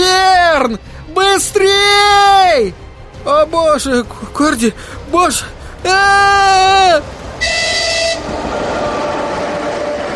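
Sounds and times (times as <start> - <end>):
train passing onto a railway bridge: 0.0 - 10.1
speech: 0.7 - 9.0
loud blaring train whistle blasts: 7.4 - 10.1.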